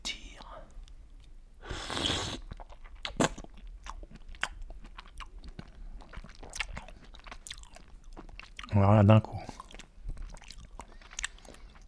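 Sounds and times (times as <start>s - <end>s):
person speaking softly in a near-whisper: 0.0s - 0.8s
slurping and swallowing a raw oyster: 1.7s - 8.7s, 9.5s - 11.8s
speech: 8.8s - 9.6s.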